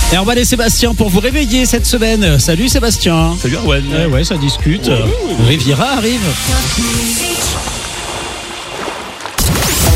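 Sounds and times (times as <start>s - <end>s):
speech: 0.1s - 7.7s
ocean waves: 5.3s - 9.9s.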